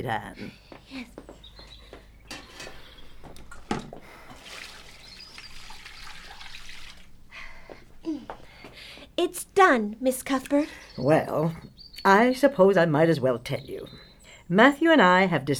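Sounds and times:
speech: 0:00.0 - 0:01.2, 0:09.2 - 0:15.5
faint bird chirps: 0:00.4 - 0:03.6, 0:04.7 - 0:06.8, 0:10.2 - 0:14.6
dishcloth rinsed under a running hot tap: 0:03.2 - 0:07.1.

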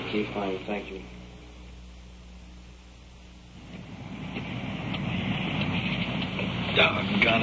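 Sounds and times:
speech: 0:00.1 - 0:01.2, 0:06.8 - 0:07.4
heavy rain: 0:03.6 - 0:07.4.

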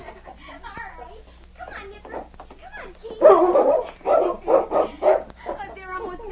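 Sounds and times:
faint voices: 0:00.3 - 0:06.3
dogs barking playfully: 0:03.1 - 0:05.8.

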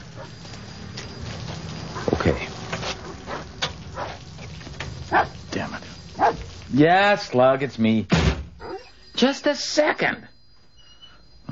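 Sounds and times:
dog barking: 0:03.0 - 0:04.2, 0:05.1 - 0:05.4, 0:06.2 - 0:06.5, 0:08.6 - 0:09.0
speech: 0:06.8 - 0:08.2, 0:09.2 - 0:10.3.

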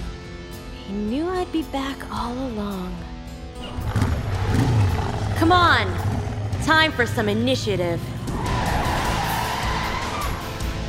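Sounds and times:
speech: 0:00.9 - 0:08.1
motorcycle engines roaring across a city in a video game: 0:03.6 - 0:10.8
motorcycle tires skidding and screeching: 0:03.6 - 0:10.8.

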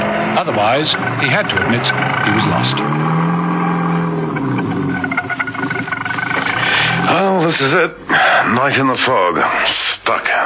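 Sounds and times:
car engine droning as the car crawls slowly through thick fog: 0:00.0 - 0:07.6
speech: 0:00.4 - 0:03.3, 0:07.5 - 0:10.4.

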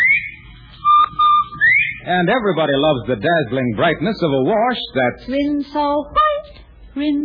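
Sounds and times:
bobwhite quail whistle call: 0:00.0 - 0:02.0
speech: 0:02.1 - 0:06.2, 0:07.0 - 0:07.2.

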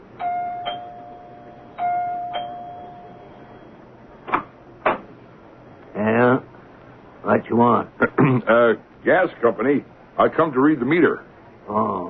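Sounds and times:
doorbell ringing with a two-note ding-dong chime: 0:00.2 - 0:03.7
speech: 0:07.3 - 0:12.0.

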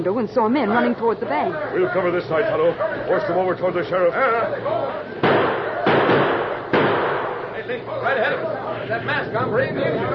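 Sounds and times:
speech: 0:00.0 - 0:05.4, 0:07.7 - 0:10.1
gunshots during a bank robbery: 0:05.2 - 0:07.6.

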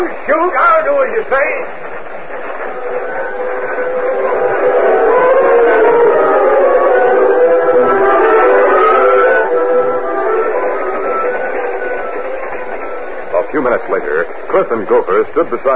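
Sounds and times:
speech: 0:00.0 - 0:02.0, 0:13.5 - 0:15.7
train rumbling: 0:00.0 - 0:15.7
sustained wailing train horn tone: 0:02.3 - 0:14.5.

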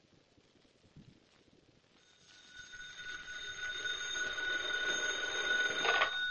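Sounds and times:
telephone bell ringing: 0:02.0 - 0:06.2.

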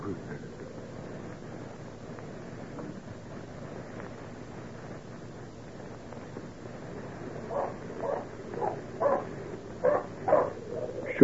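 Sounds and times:
faint hiss: 0:00.0 - 0:11.2
dog barking: 0:07.5 - 0:10.9.

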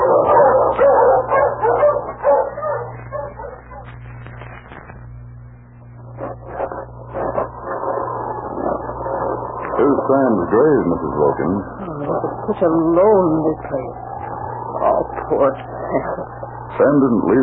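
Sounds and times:
pack of sled dogs barking and yipping in cold weather: 0:00.0 - 0:04.0
low steady hum: 0:00.0 - 0:17.4
speech: 0:10.1 - 0:14.1, 0:15.3 - 0:17.4.

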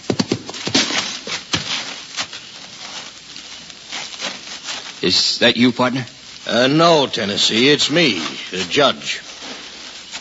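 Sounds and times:
hoofbeats of an approaching rider's horse: 0:00.0 - 0:02.4
speech: 0:05.0 - 0:09.2.

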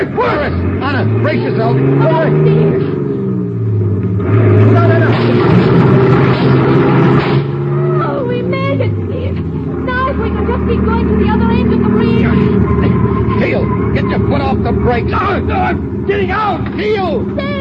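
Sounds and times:
speech: 0:00.0 - 0:02.9, 0:14.7 - 0:17.5
voices shouting: 0:00.0 - 0:03.3, 0:07.4 - 0:17.5
heavy truck engine revving while speeding to crash a barricade on a bridge: 0:00.0 - 0:17.5.

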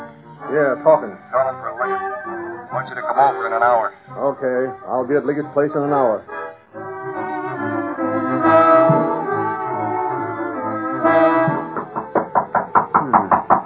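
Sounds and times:
sustained droning musical tones: 0:00.0 - 0:12.3
speech: 0:00.5 - 0:06.3
knocking on a door: 0:11.5 - 0:13.6.

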